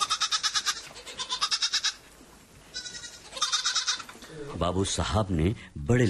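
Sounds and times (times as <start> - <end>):
goat bleating while grazing in front of a house: 0.0 - 2.1, 2.7 - 4.2
speech: 4.6 - 6.0.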